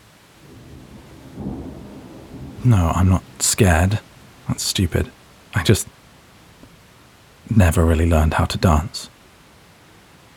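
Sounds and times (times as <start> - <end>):
steady rain hissing: 0.0 - 10.3
deep rolling thunder: 0.3 - 8.6
speech: 2.6 - 6.0, 7.5 - 9.1.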